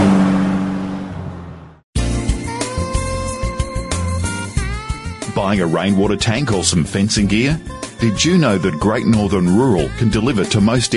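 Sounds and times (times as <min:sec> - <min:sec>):
car engine roaring past at speed: 0:00.0 - 0:01.8
music: 0:02.0 - 0:10.9
speech: 0:05.4 - 0:10.9.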